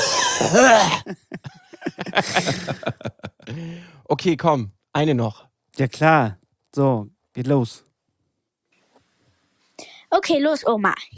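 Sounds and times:
loud exaggerated harsh cough: 0.0s - 3.1s
speech: 0.4s - 7.9s, 10.1s - 11.1s
laughter: 1.0s - 3.7s.

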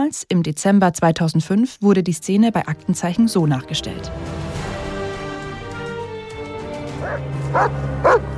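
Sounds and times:
speech: 0.0s - 4.5s, 7.1s - 8.3s
dog barking: 7.0s - 8.3s.

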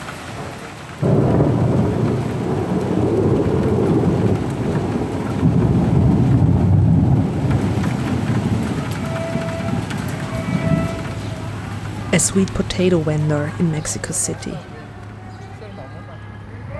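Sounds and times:
steady hiss of rain: 0.0s - 15.2s
deep rolling thunder in Lyon: 0.3s - 12.1s
speech: 12.2s - 14.7s.

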